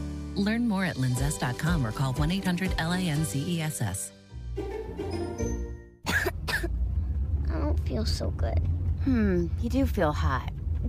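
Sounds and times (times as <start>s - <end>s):
speech: 0.4s - 5.2s, 7.9s - 10.8s
soft sustained musical tone: 4.6s - 6.0s
child coughing: 6.0s - 6.8s.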